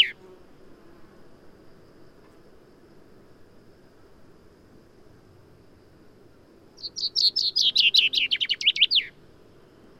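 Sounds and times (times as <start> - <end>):
common chaffinch Fringilla coelebs singing: 0.0 - 0.2, 6.8 - 9.2.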